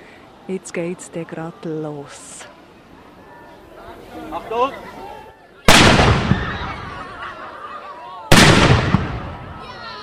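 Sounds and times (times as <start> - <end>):
speech: 0.5 - 2.5, 4.2 - 5.0
historic cannon blasts: 5.7 - 6.8, 8.3 - 9.6
laughter: 6.6 - 8.3.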